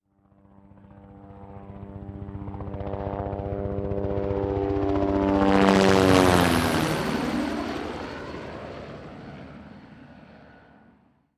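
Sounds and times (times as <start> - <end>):
helicopter flying overhead: 0.0 - 11.3.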